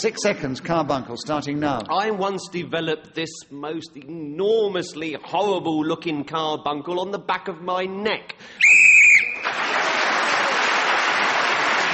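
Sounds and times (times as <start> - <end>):
speech: 0.0 - 8.8
short shrill whistle blast to end a round: 8.6 - 9.5
audience applause: 8.8 - 11.9.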